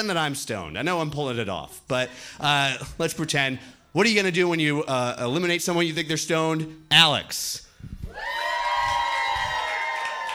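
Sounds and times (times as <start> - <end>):
speech: 0.0 - 8.4
live crowd cheering with whoops and high-pitched shouts: 8.1 - 10.3.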